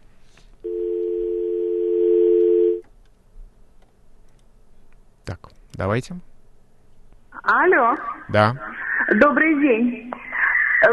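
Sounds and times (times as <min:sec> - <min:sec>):
telephone line buzzing tone as a listener's call is taken: 0:00.6 - 0:02.8
speech: 0:05.8 - 0:06.3, 0:07.6 - 0:10.2.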